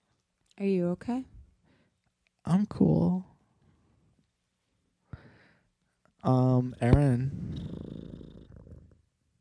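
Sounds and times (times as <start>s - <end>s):
speech: 0.6s - 1.4s, 2.4s - 3.3s, 6.2s - 7.6s
person imitating a cat purring: 6.8s - 9.0s.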